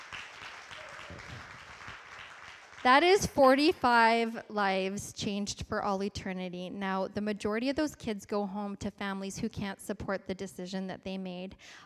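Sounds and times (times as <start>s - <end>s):
church audience clapping: 0.0s - 3.7s
speech: 2.8s - 11.8s.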